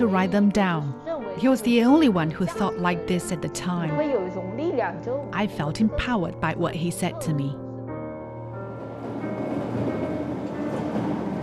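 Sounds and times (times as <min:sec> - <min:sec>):
speech: 0:00.0 - 0:07.6
train rolling along the rails: 0:08.3 - 0:11.4
train wheels clattering: 0:08.4 - 0:11.4.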